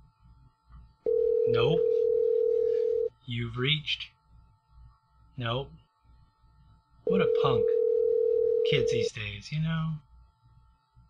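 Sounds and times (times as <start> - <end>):
outgoing phone call ringing tone: 1.1 - 3.1, 7.1 - 9.1
speech: 1.5 - 2.0, 3.3 - 4.2, 5.4 - 5.8, 7.1 - 7.8, 8.6 - 10.0.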